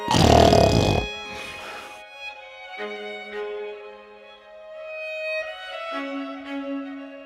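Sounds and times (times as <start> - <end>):
voice imitating snoring of a sleeping dog: 0.0 - 1.8.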